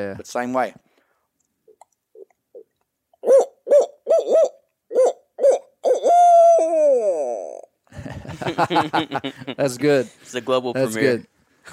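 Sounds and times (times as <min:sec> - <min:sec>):
speech: 0:00.0 - 0:00.8, 0:08.4 - 0:11.7
voice imitating a deep big owl hooting: 0:02.2 - 0:07.8
laughter: 0:07.9 - 0:09.8.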